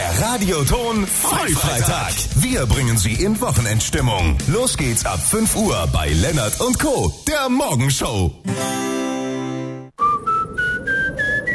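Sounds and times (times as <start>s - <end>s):
speech: 0.2s - 8.8s
steady sustained musical tone: 8.5s - 10.3s
draft whistling through a gap in a leaky front door: 10.0s - 11.5s.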